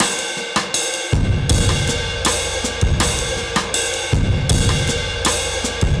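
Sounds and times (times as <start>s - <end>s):
drums: 0.0s - 5.9s.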